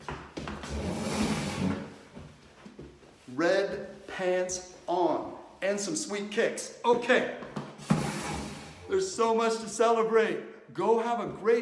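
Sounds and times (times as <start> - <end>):
chair scraping and bumping as it is dragged and set down: 0.5 - 2.1, 7.6 - 8.8
speech: 4.2 - 4.7, 5.8 - 7.5, 9.0 - 11.6.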